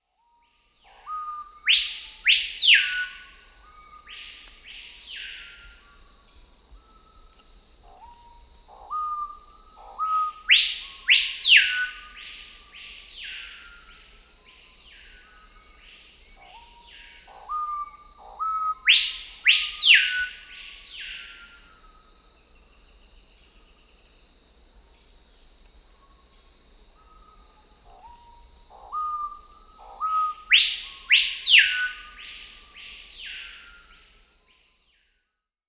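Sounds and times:
Screaming Piha Lipaugus vociferans calling in South America: 0.9 - 6.1, 6.8 - 22.1, 26.9 - 34.0.

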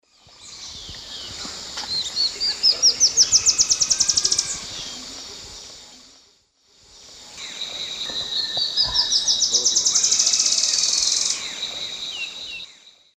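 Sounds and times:
Terenura humeralis song in S. America Eastern Lowlands: 0.0 - 5.9, 6.9 - 13.1.

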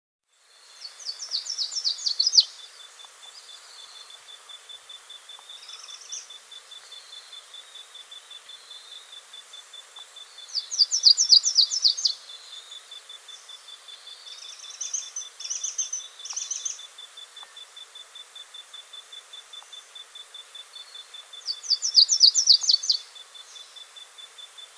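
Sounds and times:
Slate-throated redstart Myioborus singing in South America: 0.6 - 24.7.

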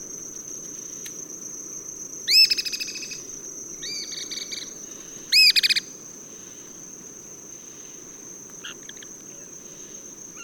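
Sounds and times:
constant high insect whine in Ecuador: 0.0 - 10.4
cliff flycatcher calling in Ecuador: 2.3 - 6.0, 8.6 - 10.4.

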